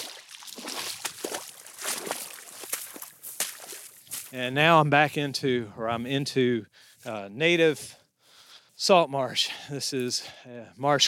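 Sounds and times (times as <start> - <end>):
footsteps sloshing through a shallow pond amid dead trees: 0.0 - 4.4
speech: 4.3 - 8.0, 8.8 - 11.0.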